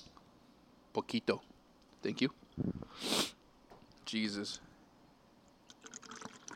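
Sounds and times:
speech: 0:01.0 - 0:03.2, 0:04.1 - 0:04.7
beer poured into a glass: 0:05.6 - 0:06.5.

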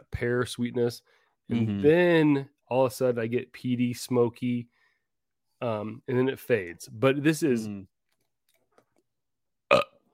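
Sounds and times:
speech: 0:00.2 - 0:04.8, 0:05.6 - 0:07.9
loud throaty burp: 0:09.7 - 0:10.1.

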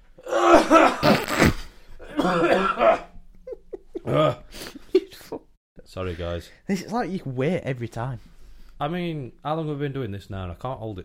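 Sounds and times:
harsh coughing: 0:00.3 - 0:03.2, 0:03.8 - 0:05.4
speech: 0:06.0 - 0:11.0.

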